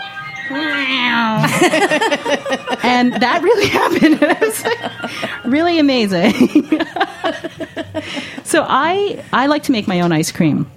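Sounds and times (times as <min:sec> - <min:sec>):
voice imitating ice cream truck music: 0:00.4 - 0:05.6
speech: 0:00.5 - 0:10.7
laughter: 0:01.4 - 0:08.5.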